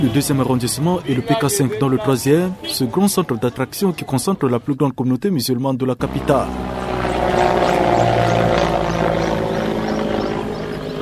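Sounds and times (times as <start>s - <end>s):
speech: 0.0s - 6.8s
helicopter flying overhead: 6.0s - 11.0s.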